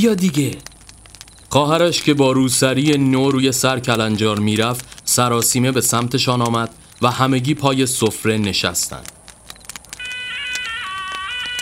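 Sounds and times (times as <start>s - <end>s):
speech: 0.0s - 0.7s, 1.5s - 9.2s
soft clicks and rustles: 0.0s - 11.6s
telephone ringing with electronic multi-tone ring: 10.0s - 11.6s.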